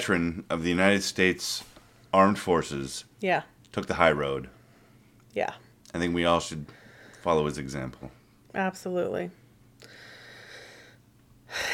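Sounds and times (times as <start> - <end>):
speech: 0.0 - 4.6, 5.3 - 9.4
deep breathing: 6.7 - 7.3, 9.8 - 11.7.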